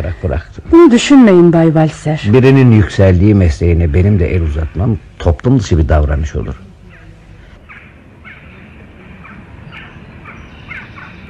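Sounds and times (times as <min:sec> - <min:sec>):
speech: 0:00.0 - 0:06.7
crows cawing and squabbling: 0:06.9 - 0:11.2.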